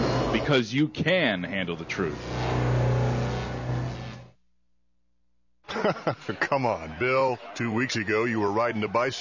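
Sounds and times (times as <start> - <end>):
speech: 0.5 - 2.7, 5.8 - 9.2
new car engine revving as it arrives: 1.7 - 4.3
laughter: 5.7 - 9.2.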